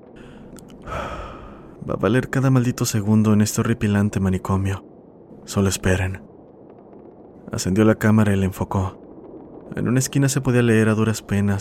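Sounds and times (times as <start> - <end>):
long loud breath: 0.2 - 1.8
speech: 1.9 - 4.9, 5.5 - 6.3, 7.5 - 9.0, 9.7 - 11.5.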